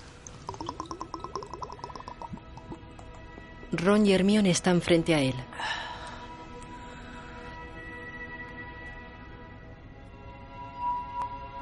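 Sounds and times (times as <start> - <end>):
person gulping: 0.2 - 3.0
small vial uncorking: 0.2 - 3.2
speech: 3.7 - 5.8.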